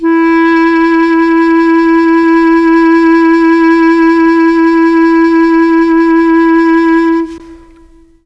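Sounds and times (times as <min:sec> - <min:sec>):
Mellotron clarinet note E3: 0:00.0 - 0:08.2.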